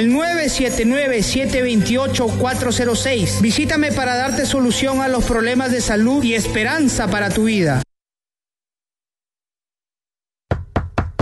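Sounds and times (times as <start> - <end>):
speech: 0.0 - 7.8
firm knocking on a door: 10.5 - 11.1.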